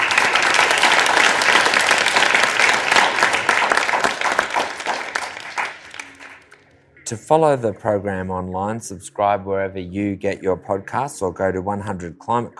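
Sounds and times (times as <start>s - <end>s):
audience applause: 0.0s - 6.6s
speech: 7.1s - 12.5s.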